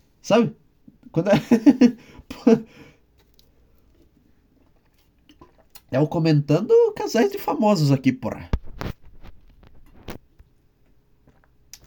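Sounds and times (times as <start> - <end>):
speech: 0.2 - 2.9, 5.9 - 8.6
laughter: 1.3 - 2.6
person drinking water with gulps and swallows: 2.0 - 5.9.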